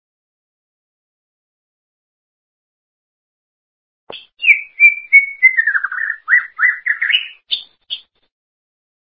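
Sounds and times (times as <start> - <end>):
greater green leafbird whistling and warbling: 4.1 - 8.2.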